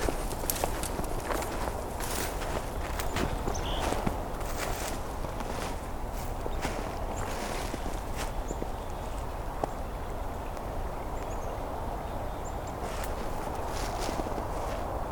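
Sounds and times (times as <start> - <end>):
footsteps crunching through leaf litter in a woodlot next to a creek: 0.0 - 9.4, 12.7 - 15.0
faint black-capped chickadee calls: 0.0 - 14.8.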